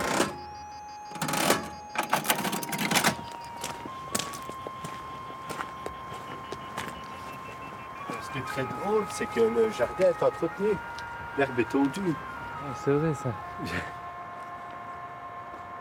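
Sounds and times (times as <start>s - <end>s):
old mechanical cash register clattering: 0.0s - 3.7s
old mechanical cash register ringing tone: 0.0s - 4.5s
speech: 8.4s - 14.0s.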